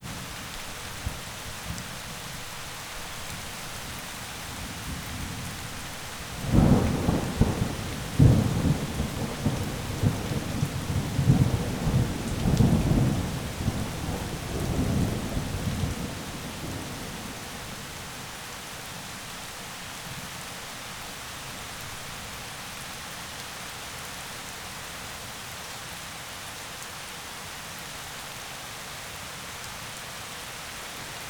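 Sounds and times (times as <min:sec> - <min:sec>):
heavy rain in forest: 0:00.0 - 0:31.2
light thunder in forest: 0:04.4 - 0:18.2.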